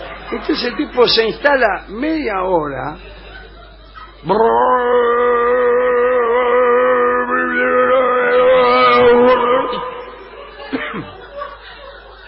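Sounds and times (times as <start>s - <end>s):
laughter: 0.0s - 1.3s, 3.0s - 12.2s
speech: 0.3s - 3.1s, 4.2s - 5.3s
person vocally imitating a leaf blower engine: 4.2s - 10.2s.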